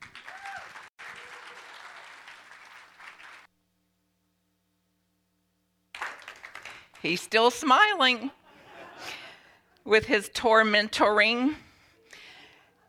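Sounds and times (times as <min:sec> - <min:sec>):
audience applause welcoming a guest: 0:00.0 - 0:03.5, 0:06.0 - 0:07.0
speech: 0:07.0 - 0:08.4, 0:09.8 - 0:11.6.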